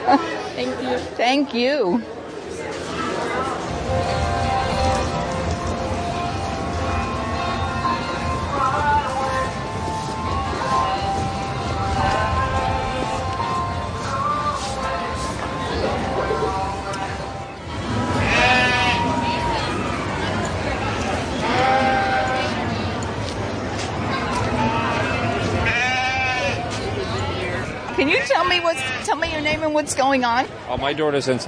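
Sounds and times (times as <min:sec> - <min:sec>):
crowd chatter in a busy indoor space: 0:00.0 - 0:31.4
speech: 0:00.1 - 0:02.8, 0:28.4 - 0:31.4
sheep bleating at a sheep show: 0:18.2 - 0:19.1, 0:21.4 - 0:22.6, 0:24.7 - 0:26.6, 0:28.0 - 0:29.2.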